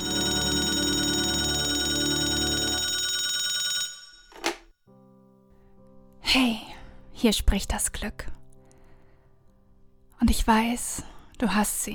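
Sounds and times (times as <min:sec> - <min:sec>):
telephone bell ringing: 0:00.0 - 0:04.4
speech: 0:06.3 - 0:08.4, 0:10.2 - 0:11.9.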